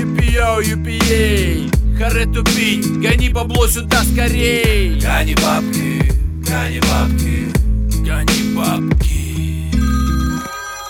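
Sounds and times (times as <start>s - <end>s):
speech: 0.6s - 1.4s, 2.0s - 9.1s
mobile phone ringing with a synthetic tonal ringtone: 9.8s - 10.8s.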